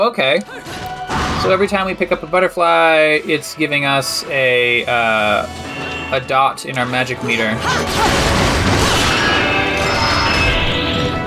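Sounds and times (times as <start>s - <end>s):
speech: 0.0s - 8.6s
door being smashed in a video game: 7.9s - 10.8s.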